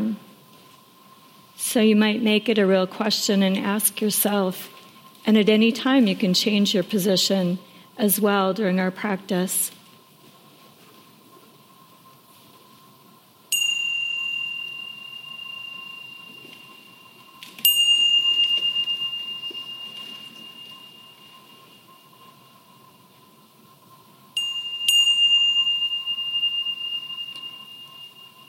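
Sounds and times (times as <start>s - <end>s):
faint steady hum: 0.0s - 28.4s
speech: 1.7s - 9.8s
meditation bell ringing: 13.5s - 28.4s.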